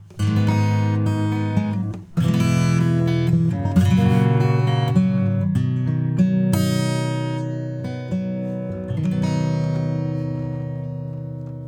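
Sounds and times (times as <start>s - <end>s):
acoustic guitar through a compressor: 0.0s - 11.6s.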